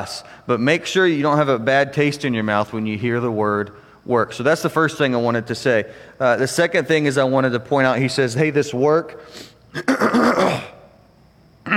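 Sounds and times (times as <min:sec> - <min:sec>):
speech: 0:00.0 - 0:10.7
person clearing throat to dislodge something stuck: 0:09.7 - 0:10.9.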